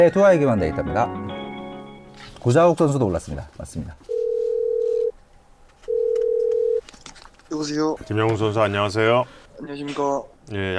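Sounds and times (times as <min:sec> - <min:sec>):
speech: 0:00.0 - 0:01.2, 0:02.2 - 0:04.1, 0:07.5 - 0:10.7
telephone ringback tone while a call is being connected: 0:04.1 - 0:05.1, 0:05.9 - 0:06.8.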